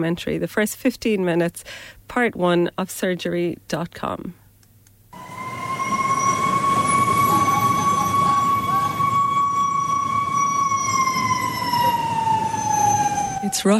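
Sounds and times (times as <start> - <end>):
speech: 0.0 - 4.4, 13.5 - 13.7
ambulance siren wailing in heavy city traffic: 5.2 - 13.7
dense rumble of heavy city traffic and road noise: 5.2 - 13.7.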